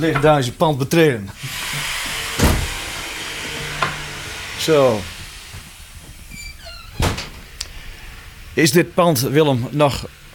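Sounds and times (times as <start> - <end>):
speech: 0.0 - 1.6, 4.6 - 5.2, 8.6 - 10.2
front door creaking open: 1.4 - 7.6
solid door thump: 2.1 - 4.1, 6.8 - 7.5
rising door hinge squeak: 6.2 - 7.5.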